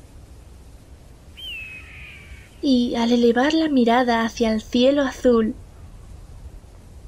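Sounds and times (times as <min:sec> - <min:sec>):
steady low wind-like rumble: 0:00.0 - 0:07.0
eagle cry: 0:01.4 - 0:02.7
speech: 0:02.6 - 0:05.6.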